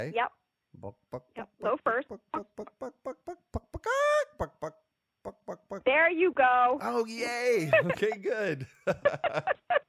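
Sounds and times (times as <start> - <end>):
speech: 0.0 - 4.5, 5.9 - 9.6
person imitating a hen's egg-laying cackle: 1.6 - 6.0.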